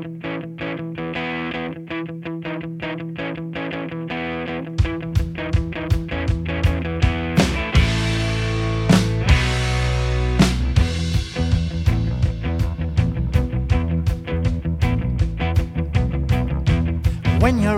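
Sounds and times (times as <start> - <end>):
alternative rock song intro by a band from Cambridge England: 0.0 - 17.7.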